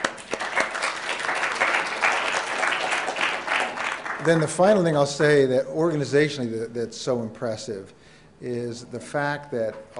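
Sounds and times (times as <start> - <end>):
crowd clapping steadily: 0.0 - 4.6
speech: 4.2 - 9.9.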